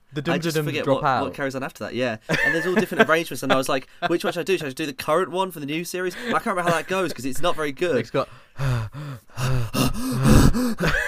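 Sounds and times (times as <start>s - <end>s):
speech: 0.2s - 11.0s
laughter: 2.3s - 3.8s, 10.8s - 11.0s
voice imitating heavy breathing in a TV series theme tune: 8.6s - 11.0s.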